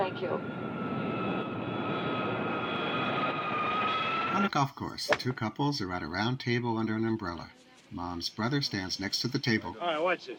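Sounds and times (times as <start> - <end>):
passenger airplane engine drone inside cabin preparing to land in Houston: 0.0 - 4.3
speech: 0.2 - 0.7, 4.4 - 10.3.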